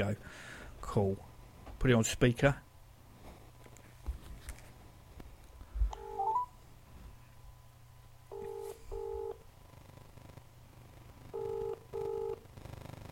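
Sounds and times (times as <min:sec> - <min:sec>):
speech: 0:00.0 - 0:02.6
low hum: 0:00.0 - 0:13.0
dual-tone telephone keypad beeps: 0:06.0 - 0:06.5, 0:11.4 - 0:12.4.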